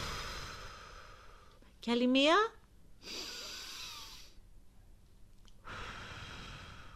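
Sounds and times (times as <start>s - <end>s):
broad airy exhale through the mouth in a relaxation exercise: 0.0s - 1.6s, 3.0s - 4.4s, 5.6s - 6.9s
hissy inhale through the nose in a relaxation exercise: 0.0s - 1.6s, 3.0s - 4.4s, 5.6s - 6.9s
speech: 1.8s - 3.2s.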